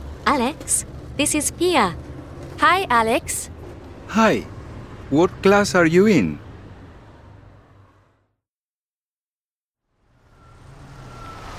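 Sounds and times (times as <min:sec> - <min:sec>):
bus engine rumbling: 0:00.0 - 0:08.3, 0:10.0 - 0:11.5
speech: 0:00.3 - 0:03.5, 0:04.1 - 0:04.5, 0:05.1 - 0:06.4
faint high whine of approaching bus: 0:10.1 - 0:11.5.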